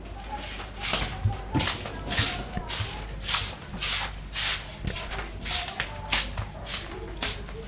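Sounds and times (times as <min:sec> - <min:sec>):
footsteps: 0:00.2 - 0:07.6.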